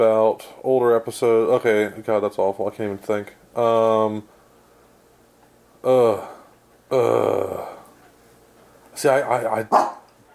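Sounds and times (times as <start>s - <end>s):
speech: 0.0s - 4.4s, 5.8s - 7.7s, 9.0s - 10.0s
dog barking: 9.7s - 10.1s.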